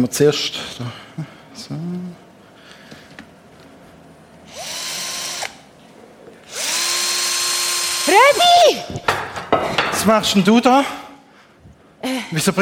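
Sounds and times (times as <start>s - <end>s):
speech: 0.0s - 1.8s, 10.0s - 11.0s, 12.0s - 12.6s
power drill driving screws: 4.5s - 5.6s, 6.5s - 8.6s.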